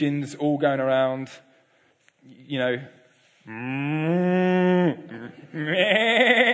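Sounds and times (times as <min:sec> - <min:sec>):
speech: 0:00.0 - 0:01.5, 0:02.2 - 0:06.5
human voice imitating a cow moo: 0:03.5 - 0:06.5.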